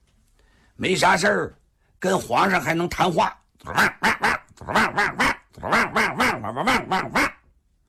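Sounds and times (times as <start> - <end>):
speech: 0.8 - 7.3
human voice imitating a dog barking with sharp voiced barks: 3.6 - 7.5.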